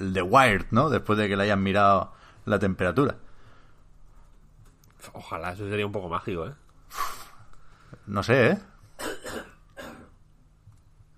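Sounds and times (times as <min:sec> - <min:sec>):
speech: 0:00.0 - 0:03.3, 0:05.0 - 0:07.2, 0:08.1 - 0:09.2
harsh coughs: 0:09.0 - 0:10.2.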